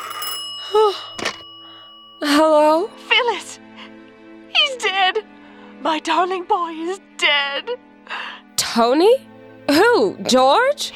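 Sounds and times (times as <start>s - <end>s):
telephone ringing: 0.0s - 3.0s
speech: 2.2s - 3.7s, 5.8s - 8.2s, 8.8s - 10.9s.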